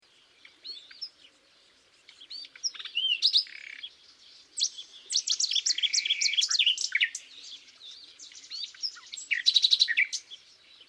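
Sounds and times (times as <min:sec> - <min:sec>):
common nightingale Luscinia megarhynchos song: 0:00.0 - 0:10.8.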